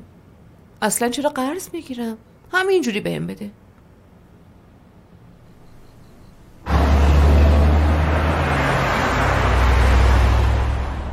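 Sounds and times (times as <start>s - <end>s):
speech: 0.8s - 3.6s
powerful luxury car engine accelerating: 6.6s - 11.1s.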